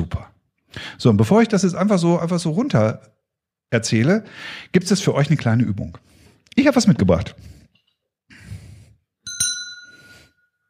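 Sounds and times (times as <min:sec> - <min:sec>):
speech: 0:00.0 - 0:07.6
small bell struck: 0:09.2 - 0:10.6.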